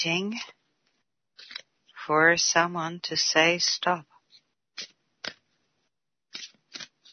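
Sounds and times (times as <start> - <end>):
speech: 0.0 - 0.6, 2.1 - 4.1
deck of playing cards being shuffled by hand: 1.4 - 1.7, 6.3 - 7.1.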